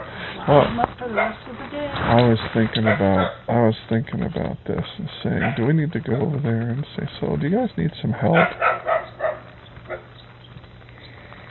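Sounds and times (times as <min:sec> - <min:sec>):
low steady hum: 0:00.0 - 0:11.4
speech: 0:00.5 - 0:08.9
dog barking: 0:01.1 - 0:01.4, 0:02.8 - 0:03.4, 0:05.4 - 0:05.7, 0:08.1 - 0:10.1.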